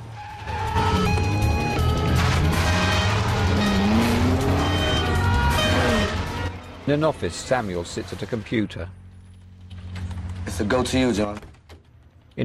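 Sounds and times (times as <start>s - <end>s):
police car tires squealing: 0.0s - 8.6s
police car engines revving: 0.0s - 10.6s
speech: 6.9s - 9.0s, 10.6s - 11.5s.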